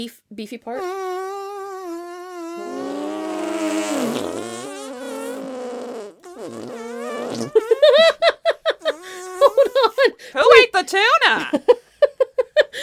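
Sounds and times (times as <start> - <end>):
speech: 0.0 - 1.2, 6.4 - 8.4, 9.7 - 11.8
squelchy arm farts pitched like a tune: 0.7 - 8.0, 8.8 - 10.0.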